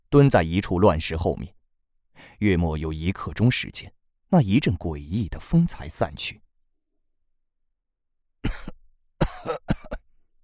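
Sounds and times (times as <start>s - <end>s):
speech: 0.1s - 1.6s, 2.4s - 6.4s, 8.4s - 9.3s
old man coughing in short harsh bursts: 8.4s - 10.1s.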